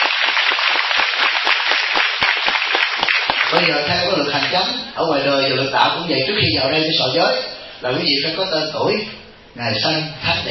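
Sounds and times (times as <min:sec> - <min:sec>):
audience applause at a Buddhist retreat: 0:00.0 - 0:04.9
speech: 0:03.5 - 0:10.4.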